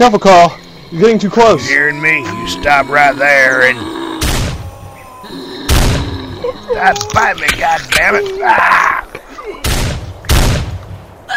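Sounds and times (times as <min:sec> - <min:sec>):
speech: 0:00.0 - 0:04.0, 0:06.7 - 0:09.0
people shouting: 0:01.0 - 0:09.2
gunshots fired at point-blank range: 0:04.2 - 0:04.7, 0:09.6 - 0:10.8.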